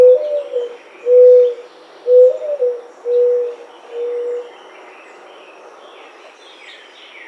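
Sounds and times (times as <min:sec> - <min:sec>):
Mourning Dove cooing: 0:00.0 - 0:04.5.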